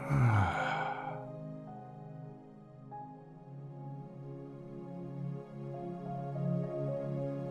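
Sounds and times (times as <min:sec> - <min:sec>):
breathy exhale: 0:00.0 - 0:01.3
soft sustained musical tones: 0:00.0 - 0:07.4.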